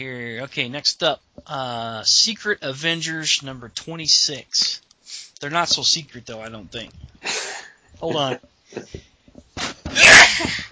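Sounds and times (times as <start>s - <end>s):
speech: 0.0s - 10.6s
sneeze: 9.6s - 10.5s.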